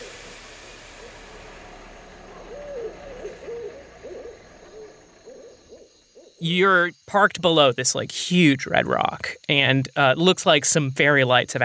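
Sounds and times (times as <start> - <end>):
owls hooting at night in a parking lot beside a building: 0.0 - 6.5
steady low hum: 0.0 - 9.2
crickets: 0.0 - 11.6
speech: 6.4 - 11.6.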